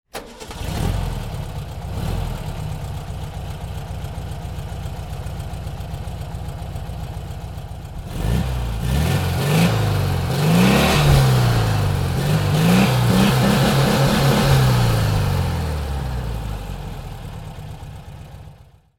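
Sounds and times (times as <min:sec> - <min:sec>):
1961 VW 1200 Luxe engine starting: 0:00.1 - 0:06.8, 0:07.6 - 0:18.6.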